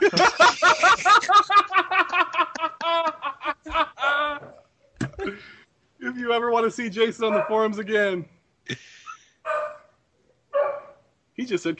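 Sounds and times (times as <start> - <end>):
laughter: 0.0 - 4.6
speech: 6.7 - 8.8, 11.5 - 11.7
dog barking: 7.2 - 7.7, 9.4 - 11.0.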